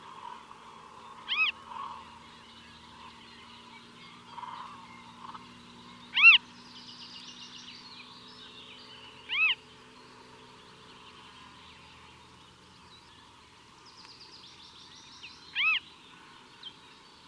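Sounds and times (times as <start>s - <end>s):
falcon calls: 1.2s - 2.1s, 6.1s - 6.4s, 9.3s - 9.6s, 15.5s - 15.8s.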